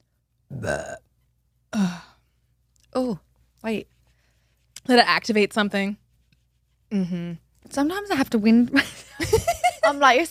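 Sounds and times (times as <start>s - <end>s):
person burping after eating jelly beans: 0.5s - 1.1s
speech: 0.6s - 1.0s, 3.0s - 3.9s, 4.8s - 6.0s, 6.9s - 10.2s.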